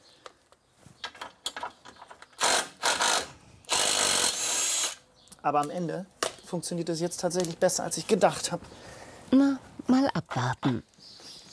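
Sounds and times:
screws being worked loose on a dirty machine clicking and ratcheting: 1.4s - 5.0s
speech: 5.4s - 10.9s.

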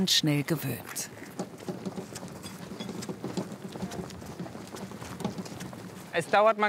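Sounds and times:
speech: 0.0s - 1.2s, 6.2s - 6.6s
horse hooves clip-clopping while pulling a carriage: 0.3s - 6.6s
faint rattling of the horse-drawn carriage: 1.2s - 6.4s.

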